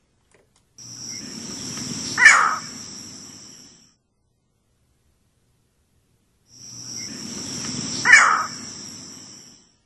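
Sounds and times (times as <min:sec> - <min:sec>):
hum of insects: 0:00.8 - 0:04.0, 0:06.5 - 0:09.8
green heron harsh squawks: 0:02.1 - 0:02.8, 0:08.0 - 0:08.7.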